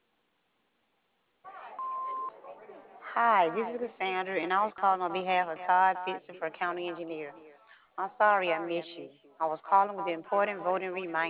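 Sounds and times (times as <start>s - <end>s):
answering machine beep: 1.8s - 2.3s
speech: 3.2s - 11.2s.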